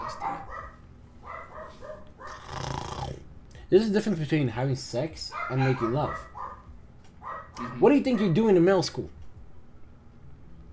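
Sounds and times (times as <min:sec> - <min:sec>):
dogs barking and yelping: 0:00.0 - 0:02.8, 0:05.3 - 0:08.5
speech: 0:03.7 - 0:06.3, 0:07.6 - 0:09.2.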